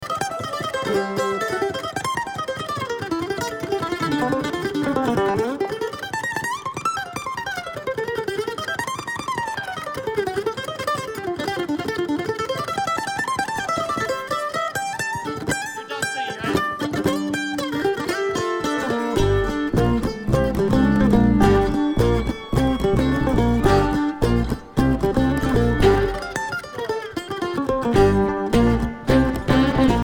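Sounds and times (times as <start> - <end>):
Kentucky mandolin: 0.0 - 30.0.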